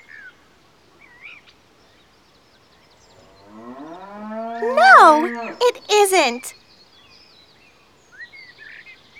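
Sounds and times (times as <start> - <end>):
cow mooing: 3.4 - 5.6
speech: 4.6 - 6.6.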